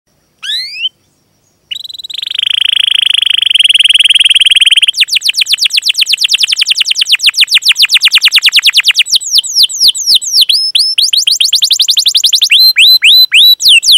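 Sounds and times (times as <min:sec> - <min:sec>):
canary lure song with buzzy trill and fast falling whistles: 0:00.4 - 0:13.9.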